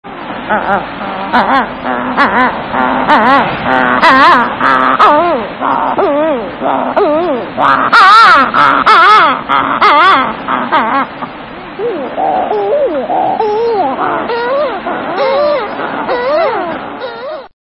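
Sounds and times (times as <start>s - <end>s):
Sooty Shearwater calling: 0.1s - 17.5s.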